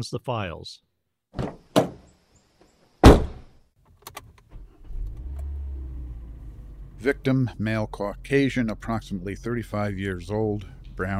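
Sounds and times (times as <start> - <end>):
speech: 0.0 - 1.5, 7.0 - 11.1
car door slamming shut with a heavy thunk: 1.4 - 2.0, 3.0 - 3.5
low engine-like rumble: 4.8 - 11.1.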